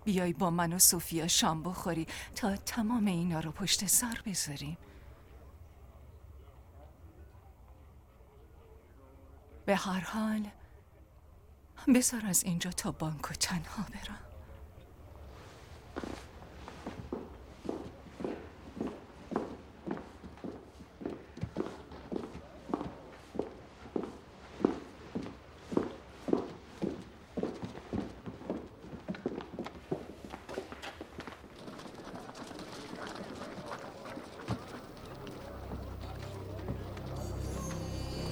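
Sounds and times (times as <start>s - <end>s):
speech: 0.1s - 4.9s, 9.7s - 10.6s, 11.8s - 14.3s, 16.0s - 16.2s
footsteps walking: 15.4s - 31.1s, 33.8s - 38.3s.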